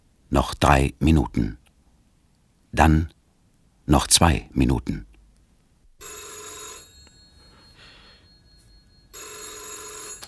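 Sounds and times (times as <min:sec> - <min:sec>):
faint noise: 0:00.0 - 0:10.2
speech: 0:00.3 - 0:01.6, 0:02.8 - 0:03.2, 0:03.9 - 0:05.1
telephone bell ringing loudly: 0:06.0 - 0:10.2.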